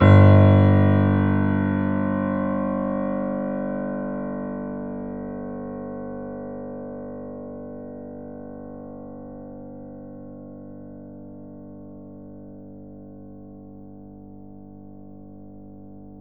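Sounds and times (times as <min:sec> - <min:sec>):
grand piano G0 note played forte: 0:00.0 - 0:03.6.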